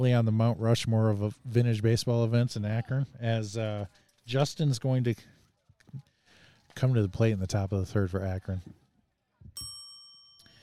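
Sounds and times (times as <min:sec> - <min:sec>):
speech: 0:00.0 - 0:05.3, 0:06.8 - 0:08.8
faint noise: 0:00.0 - 0:10.6
bright metallic bell strike signalling a pitch: 0:09.6 - 0:10.6.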